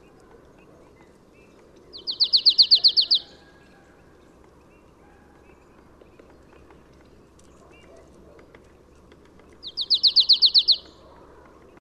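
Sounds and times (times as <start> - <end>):
marsh tit giving bright chipping notes: 2.0 - 3.4, 5.8 - 11.2.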